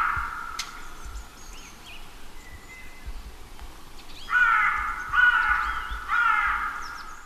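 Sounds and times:
ravens croaking outdoors: 0:00.0 - 0:01.2, 0:04.3 - 0:07.2.

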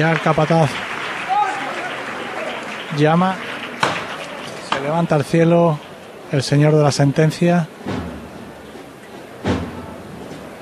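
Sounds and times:
speech: 0:00.0 - 0:00.9, 0:02.9 - 0:03.5, 0:04.8 - 0:08.0
large crowd applauding after a saeta: 0:00.0 - 0:07.1.

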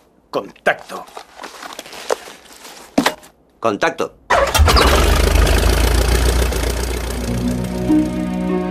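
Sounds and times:
speech: 0:00.3 - 0:01.3, 0:03.6 - 0:05.2, 0:06.3 - 0:06.5
engine cranking, starting and idling: 0:04.3 - 0:08.6.

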